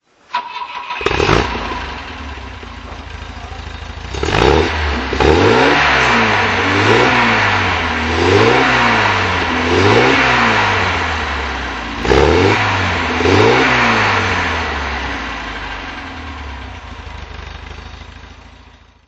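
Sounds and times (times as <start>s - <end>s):
Volvo P1800ES engine throttle: 0.6s - 18.5s.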